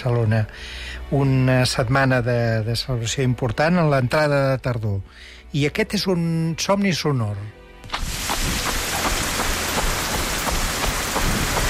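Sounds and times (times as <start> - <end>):
speech: 0.0 - 8.6
jogging footfalls slapping on a wet surface: 7.8 - 11.6
steady dense rain hissing: 8.0 - 11.6.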